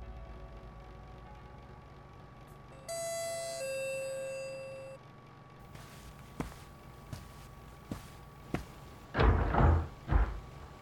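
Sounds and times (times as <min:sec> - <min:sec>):
two-tone doorbell chime at a house: 0:02.8 - 0:05.0
front door being opened and swinging: 0:08.8 - 0:10.8.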